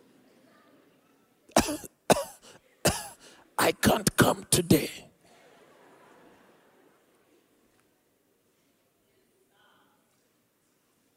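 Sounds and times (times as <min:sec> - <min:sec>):
person faking forced exaggerated coughs: 0:01.5 - 0:05.1
speech: 0:01.7 - 0:02.0, 0:03.6 - 0:05.1.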